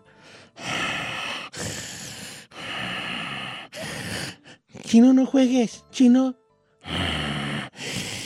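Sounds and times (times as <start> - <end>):
person imitating menacing snorting huffing breaths: 0.6 - 4.6, 6.8 - 8.2
speech: 4.9 - 6.4.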